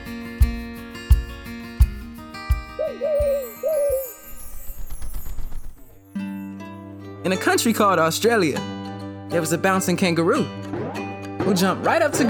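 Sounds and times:
thumping rhythmic backing: 0.0 - 4.0, 10.6 - 12.2
owl-like hoots: 2.8 - 4.2
speech: 7.2 - 10.6, 11.4 - 12.2.

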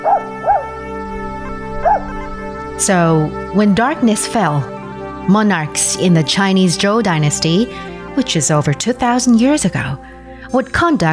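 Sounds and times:
dog giving high-pitched yips with a whimpering tone: 0.0 - 0.8, 1.5 - 2.4
steady droning background: 0.0 - 11.1
speech: 2.8 - 11.1.

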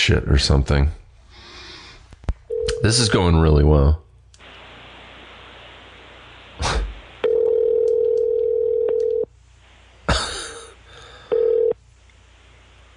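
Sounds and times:
speech: 0.0 - 1.0, 2.8 - 4.0
outgoing phone call ringback tone pulses: 2.5 - 2.8, 7.2 - 9.3, 11.3 - 11.8.

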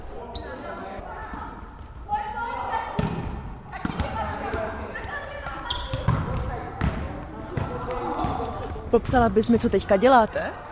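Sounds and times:
volleyballs smacking and thudding as female players pass in pairs at training: 3.0 - 9.8
speech: 8.9 - 10.7.

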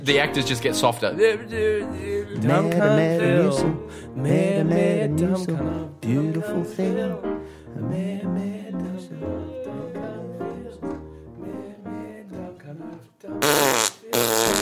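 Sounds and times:
speech: 0.0 - 11.0
fart: 13.4 - 14.6.

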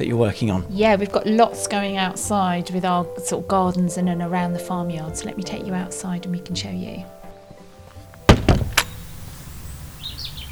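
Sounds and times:
speech: 0.0 - 7.2
low outdoor rumble: 8.1 - 10.5
sharp door-like thuds: 8.2 - 9.6
faint bird chirps outdoors: 8.7 - 10.5.

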